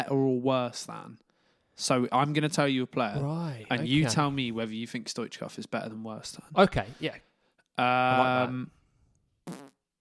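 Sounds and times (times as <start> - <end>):
speech: 0.0 - 1.2, 1.8 - 8.8, 9.5 - 9.7
buzzy raspberry blown with the lips imitating a fart: 9.5 - 9.8.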